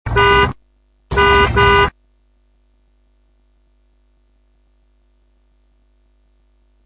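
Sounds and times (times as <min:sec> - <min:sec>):
auto klaxon: 0:00.1 - 0:01.9.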